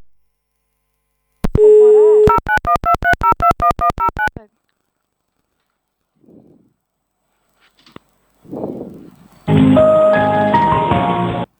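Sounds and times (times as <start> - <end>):
steady phone dial tone after a call cuts off: 1.5 - 4.4
rapid short repeated phone beeps: 2.3 - 4.4
faint rustling: 4.4 - 9.9
burst of music: 9.5 - 11.5.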